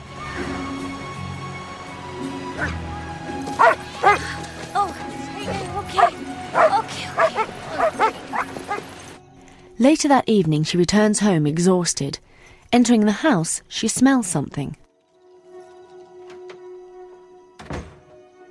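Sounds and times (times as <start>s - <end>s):
dogs on leads at a beach barking and yelping: 2.6s - 2.8s, 3.5s - 4.4s, 5.4s - 9.1s
speech: 2.6s - 2.8s, 9.8s - 14.8s
dogs on leads at a beach whimpering and whining: 3.6s - 4.4s, 5.4s - 8.9s.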